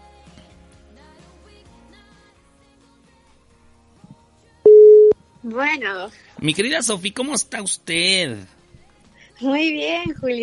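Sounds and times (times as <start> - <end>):
telephone ringback tone while a guest is being called: 4.7 - 5.2
speech: 5.4 - 8.6, 9.4 - 10.4.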